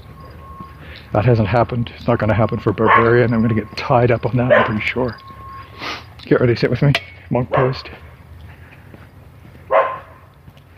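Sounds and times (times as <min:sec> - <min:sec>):
speech: 0:01.1 - 0:05.4, 0:06.2 - 0:08.1
small dog yapping: 0:09.7 - 0:10.2.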